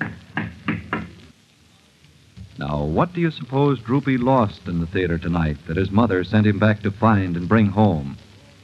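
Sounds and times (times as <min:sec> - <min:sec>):
firm knocking on an office door: 0:00.0 - 0:01.2
faint room noise: 0:00.0 - 0:08.6
speech: 0:02.6 - 0:08.2.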